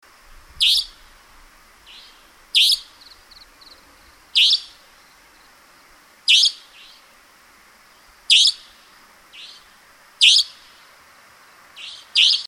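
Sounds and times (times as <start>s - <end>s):
savanna nightjar calling: 0.6s - 1.1s, 1.9s - 5.4s, 6.3s - 7.1s, 8.3s - 10.9s, 11.8s - 12.4s.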